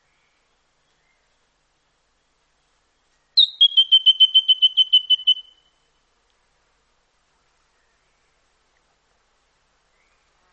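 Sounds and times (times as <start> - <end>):
White-throated treecreeper delivering a quick even trill: 3.4 - 5.7.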